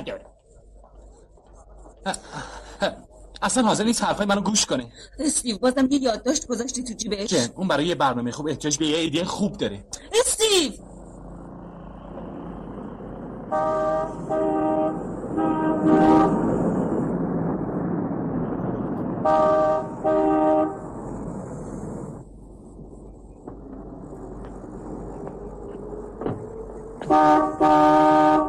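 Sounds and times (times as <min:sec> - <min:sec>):
speech: 0:00.0 - 0:00.3, 0:02.0 - 0:10.9, 0:13.5 - 0:14.6, 0:19.2 - 0:20.2, 0:27.1 - 0:28.0
continuous rumbling noise: 0:00.0 - 0:28.4
car horn honking: 0:13.5 - 0:16.5, 0:19.2 - 0:20.9, 0:27.0 - 0:28.4.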